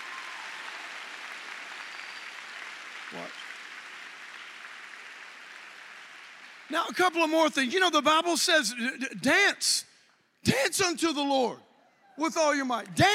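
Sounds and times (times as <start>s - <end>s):
audience clapping: 0.0s - 7.7s
speech: 3.1s - 3.4s, 6.7s - 13.1s.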